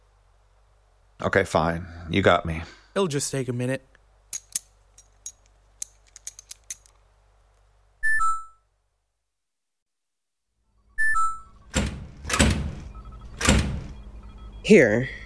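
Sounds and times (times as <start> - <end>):
speech: 1.2 - 3.9, 14.7 - 15.2
short electronic keypad beeps: 8.0 - 8.6, 11.0 - 11.8, 12.8 - 15.2
sharp clicks and taps on a door that won't being worked on: 11.7 - 14.0.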